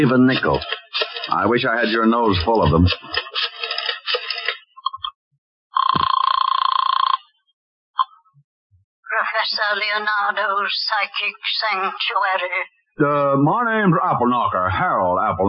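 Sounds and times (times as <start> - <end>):
speech: 0.0 - 3.2, 9.4 - 15.4
laughter: 0.0 - 4.6, 13.0 - 15.4
old-fashioned telephone bell ringing: 5.8 - 7.3.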